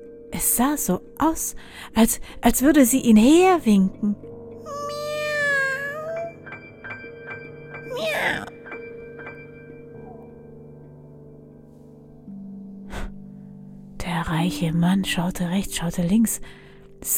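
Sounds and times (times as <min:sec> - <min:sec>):
speech: 0:00.3 - 0:04.3, 0:14.5 - 0:17.1
cat meowing: 0:04.7 - 0:06.4, 0:07.9 - 0:08.5.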